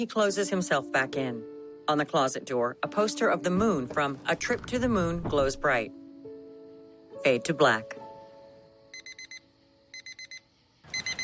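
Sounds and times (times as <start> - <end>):
speech: 0.0 - 6.0, 7.2 - 8.0
alarm clock ringing with high-pitched electronic beeps: 8.9 - 11.2.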